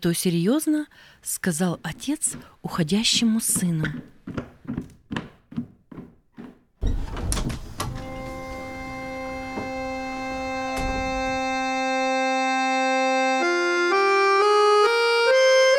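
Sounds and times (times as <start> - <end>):
speech: 0.0 - 5.3
footsteps: 1.8 - 11.9
door shutting with a solid thud: 6.8 - 11.9
sustained musical tone: 7.8 - 15.7.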